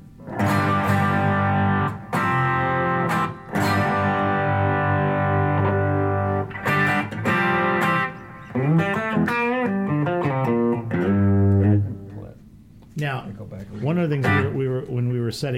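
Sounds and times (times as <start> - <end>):
overdriven electric guitar playing sustained chords and bending lead notes: 0.0 - 12.3, 14.2 - 14.6
speech: 13.0 - 15.5.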